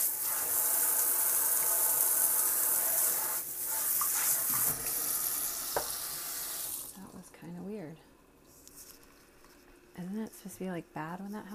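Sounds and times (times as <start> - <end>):
water running from a kitchen tap: 0.0 - 7.0
speech: 10.2 - 11.5.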